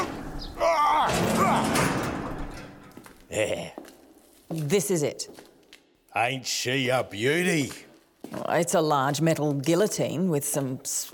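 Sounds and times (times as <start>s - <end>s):
metal roller door squealing and rattling: 1.0s - 3.0s
speech: 3.4s - 3.8s, 4.5s - 5.5s, 6.1s - 11.1s.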